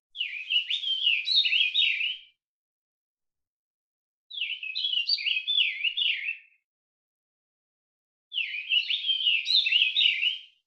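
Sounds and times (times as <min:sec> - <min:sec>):
person singing: 0:00.2 - 0:02.4, 0:04.3 - 0:06.6, 0:08.3 - 0:10.6.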